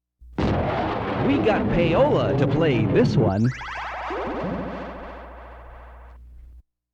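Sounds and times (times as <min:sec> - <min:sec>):
1970s thundershot bang: 0:00.4 - 0:06.2.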